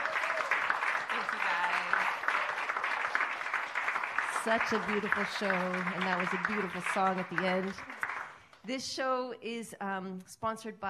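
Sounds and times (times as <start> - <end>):
audience at an arts center in Homer Alaska applauding a singer: 0.0 - 8.6
speech: 4.4 - 8.0, 8.7 - 10.8.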